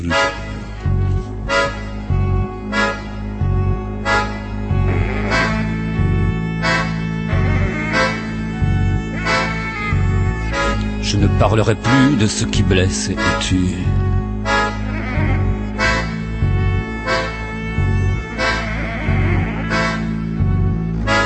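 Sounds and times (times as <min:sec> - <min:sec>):
sustained brassy horn-like chords: 0:00.0 - 0:21.2
thumping beat of a recorded song: 0:00.0 - 0:21.2
speech: 0:11.2 - 0:14.1.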